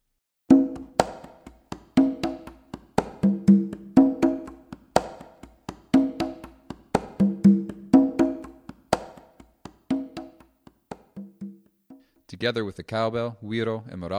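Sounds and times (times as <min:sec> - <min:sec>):
conga drums playing a solo tumbao rhythm in cha-cha-cha style: 0:00.5 - 0:12.3
speech: 0:12.4 - 0:14.1.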